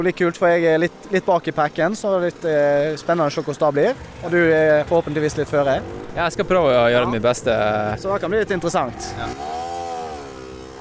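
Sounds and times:
speech: 0.0s - 9.6s
motor scooter engine passing by: 2.4s - 10.7s.

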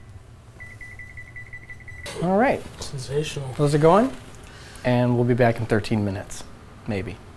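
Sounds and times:
low hum: 0.0s - 7.3s
kitchen timer beeping in short high-pitched tones: 0.6s - 2.8s
speech: 2.2s - 7.2s.

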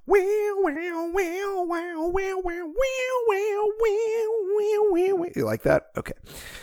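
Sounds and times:
voice imitating an electric guitar riff a cappella: 0.1s - 5.4s
speech: 0.1s - 6.6s.

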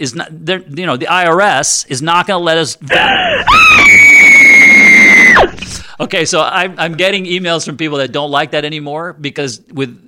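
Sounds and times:
speech: 0.0s - 4.1s, 5.4s - 10.0s
woman screaming: 2.9s - 5.6s.

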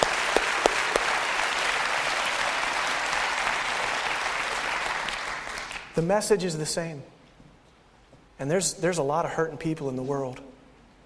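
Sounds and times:
audience clapping: 0.0s - 6.0s
speech: 6.0s - 7.2s, 8.4s - 10.5s.

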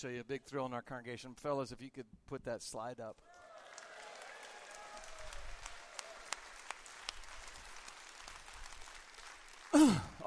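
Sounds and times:
speech: 0.0s - 3.4s, 9.7s - 10.2s
audience clapping: 3.2s - 10.2s.

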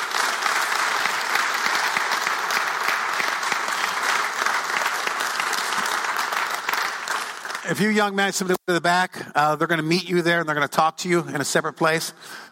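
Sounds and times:
large crowd applauding: 0.0s - 8.2s
speech: 7.7s - 12.5s.

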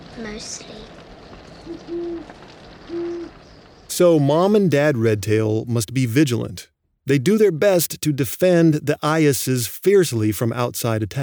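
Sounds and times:
hiss: 0.0s - 11.2s
speech: 0.2s - 1.0s, 1.6s - 11.2s
great horned owl hooting: 1.5s - 3.9s.

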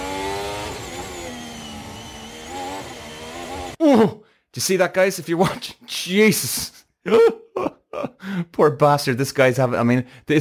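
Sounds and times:
racing car engine revving hard and shifting during a pole lap: 0.0s - 3.8s
speech: 3.9s - 10.3s.

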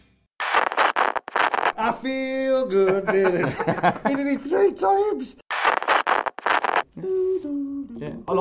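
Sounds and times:
rough noisy bursts: 0.4s - 1.7s, 5.5s - 6.8s
speech: 1.9s - 5.4s, 7.0s - 8.3s
laughter: 2.8s - 4.4s.

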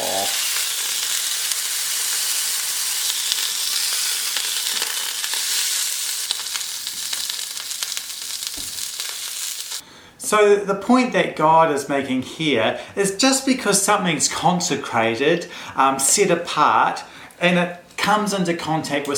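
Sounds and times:
steak sizzling in a hot frying pan: 0.0s - 9.8s
speech: 10.3s - 19.1s.

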